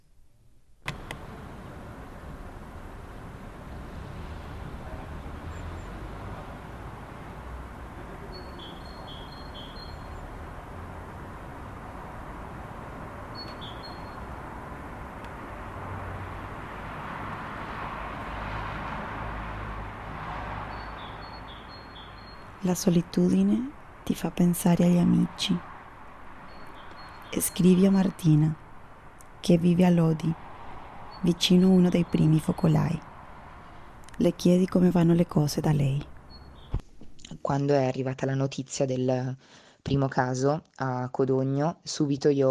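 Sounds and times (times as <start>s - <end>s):
steady city hum: 0.0s - 38.4s
faint distant traffic: 0.8s - 38.0s
short high bird chirps: 8.1s - 10.5s, 13.3s - 14.4s, 20.7s - 23.7s, 26.4s - 28.6s, 31.1s - 33.0s, 34.2s - 36.8s
speech: 22.6s - 25.7s, 27.4s - 28.6s, 29.4s - 30.4s, 31.2s - 33.1s, 34.2s - 36.1s, 37.5s - 42.5s.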